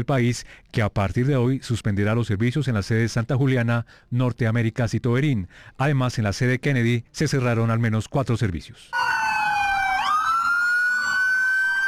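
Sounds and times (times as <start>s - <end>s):
speech: 0.0s - 9.1s
ambulance sirens wailing in protest outside a medical clinic in Bogotá: 9.0s - 11.8s.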